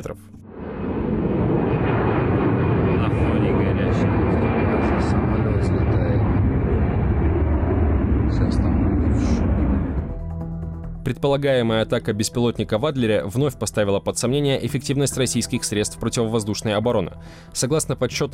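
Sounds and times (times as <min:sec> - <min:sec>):
speech: 0:00.0 - 0:00.7, 0:11.2 - 0:18.3
passenger jet engines roaring during takeoff: 0:00.5 - 0:10.1.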